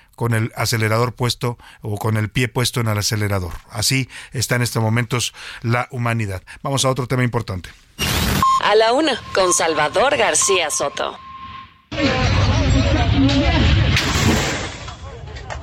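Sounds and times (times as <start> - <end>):
speech: 0.2 - 11.2
glass smashing during a violent attack: 12.0 - 15.1.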